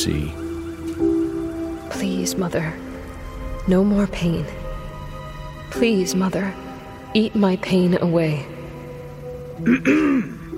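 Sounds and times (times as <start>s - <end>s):
speech: 0.0s - 0.4s, 2.0s - 2.9s, 3.7s - 4.6s, 5.7s - 8.6s, 9.6s - 10.4s
steady low hum: 0.0s - 10.5s
throat clearing: 9.6s - 10.5s.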